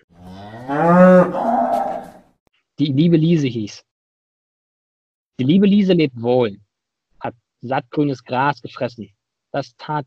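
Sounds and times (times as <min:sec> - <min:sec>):
cow mooing: 0:00.0 - 0:02.2
speech: 0:02.8 - 0:03.9, 0:05.4 - 0:06.6, 0:07.2 - 0:10.0.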